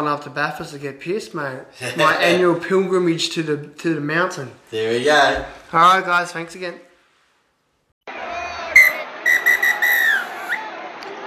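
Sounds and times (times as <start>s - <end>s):
speech: 0.0s - 6.9s
crowd murmur: 8.1s - 11.2s
laughter: 8.2s - 11.2s
referee's final whistle blowing: 8.7s - 10.7s.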